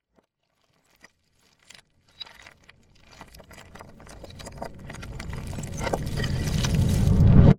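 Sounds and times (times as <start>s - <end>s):
fantasy reversed debris explosion spell: 4.9s - 7.5s.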